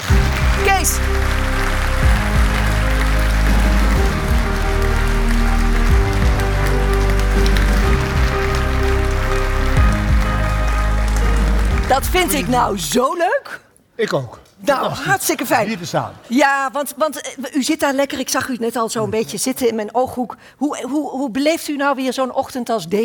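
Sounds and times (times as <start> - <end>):
large crowd applauding loudly: 0.0 - 13.0
upbeat music: 0.0 - 13.2
speech: 0.8 - 1.4, 12.0 - 23.0.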